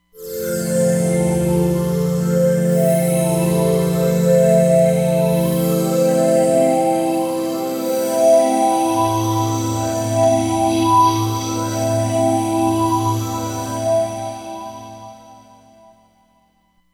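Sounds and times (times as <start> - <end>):
Roland Fantom XR synthesizer: 0.2 - 15.9.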